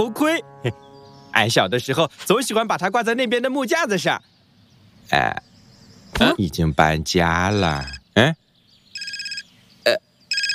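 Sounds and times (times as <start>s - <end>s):
speech: 0.0s - 4.3s, 5.1s - 5.5s, 6.2s - 8.4s, 9.8s - 10.0s
electronic telephone ringtone trilling: 7.8s - 8.0s, 9.0s - 9.5s, 10.3s - 10.5s.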